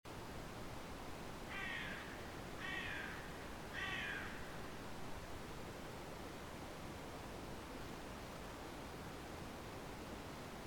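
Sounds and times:
steady hiss of background noise: 0:00.1 - 0:10.6
Carrion crow Corvus corone calling short rasping caws: 0:01.5 - 0:04.6.

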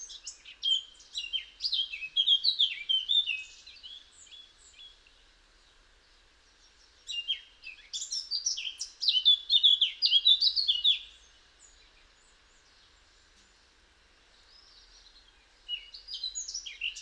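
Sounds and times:
Eurasian blackcap Sylvia atricapilla singing: 0:00.0 - 0:05.1, 0:07.1 - 0:12.7, 0:14.4 - 0:16.9.

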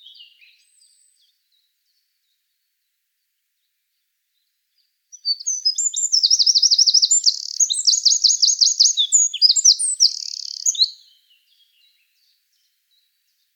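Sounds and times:
Eurasian wren Troglodytes troglodytes singing tinkling notes and buzzy trills: 0:05.2 - 0:11.8.

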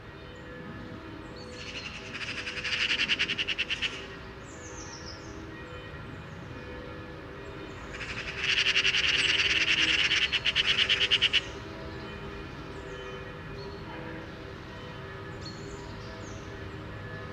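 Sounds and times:
Pica pica Eurasian magpie chattering: 0:02.1 - 0:04.1, 0:07.9 - 0:11.6.

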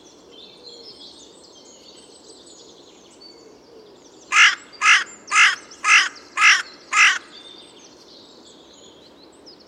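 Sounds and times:
faint background hiss: 0:00.0 - 0:09.6
Carrion crow (Corvus corone) giving harsh raspy caws: 0:04.3 - 0:07.4.

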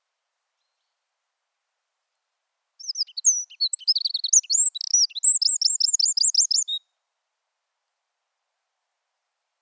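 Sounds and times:
Eurasian wren Troglodytes troglodytes song with high twittering and fast trill: 0:02.8 - 0:06.8.

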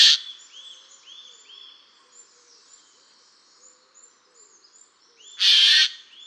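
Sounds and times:
small birds twittering: 0:00.0 - 0:06.2
Eurasian jay Garrulus glandarius harsh screech: 0:05.4 - 0:06.0.

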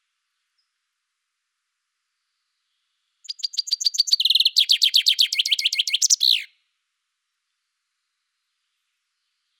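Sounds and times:
common chaffinch Fringilla coelebs singing: 0:03.2 - 0:06.5.

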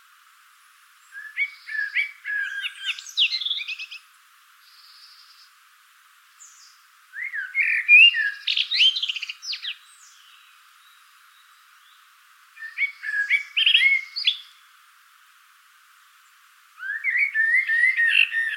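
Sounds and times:
common blackbird Turdus merula singing: 0:01.0 - 0:04.0, 0:06.4 - 0:14.6, 0:16.8 - 0:18.5.

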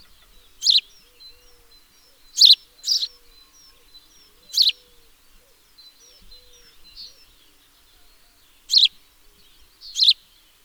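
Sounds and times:
house sparrow Passer domesticus chirps: 0:00.0 - 0:10.6.

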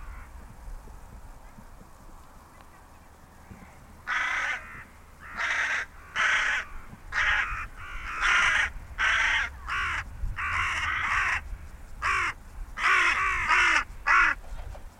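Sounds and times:
Carrion crow rasping caws: 0:00.0 - 0:00.3, 0:04.0 - 0:14.4.

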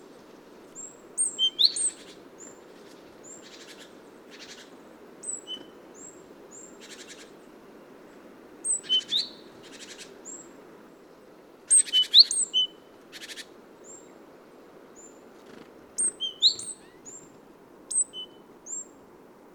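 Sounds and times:
great tit (Parus major) calls: 0:00.8 - 0:07.4, 0:08.6 - 0:10.5, 0:11.7 - 0:14.2, 0:15.0 - 0:17.3, 0:17.9 - 0:18.9.

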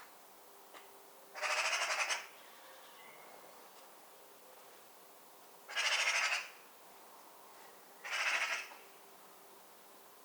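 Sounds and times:
Eurasian magpie Pica pica rasping chatter: 0:01.4 - 0:02.3, 0:05.7 - 0:06.5, 0:08.0 - 0:08.7.

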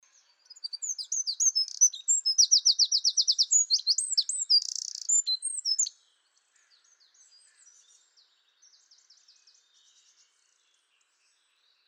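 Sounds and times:
Eurasian wren Troglodytes troglodytes singing high-pitched song of chips and trills: 0:00.5 - 0:05.9.

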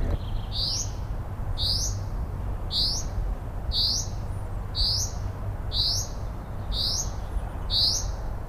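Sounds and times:
common chaffinch (Fringilla coelebs) calling with a sharp, bright note: 0:00.2 - 0:02.1, 0:02.7 - 0:08.3.

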